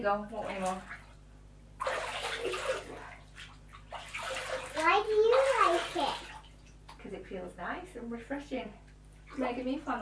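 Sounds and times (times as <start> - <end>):
speech: 0.0 - 1.0, 7.0 - 10.0
bath water splashing and pouring during a hair rinse: 0.0 - 7.2, 9.0 - 10.0.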